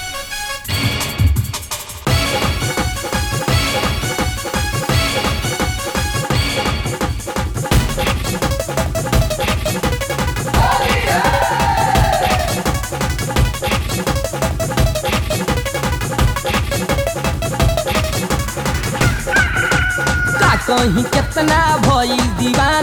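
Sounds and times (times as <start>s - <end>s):
loud driving folk-style music with a steady thumping beat: 0.7s - 22.8s
rooster-like crow: 19.0s - 21.2s.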